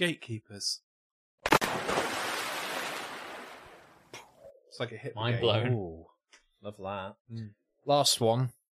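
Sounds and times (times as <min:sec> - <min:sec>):
speech: 0:00.0 - 0:00.9, 0:04.8 - 0:08.6
water splash sound effect: 0:01.5 - 0:04.1.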